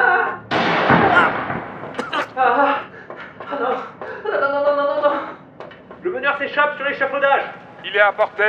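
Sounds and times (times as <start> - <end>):
loud gunshot blast: 0.5 - 2.3
agitated voices shouting: 1.0 - 2.8
laughter: 1.1 - 5.4
speech: 6.4 - 8.4.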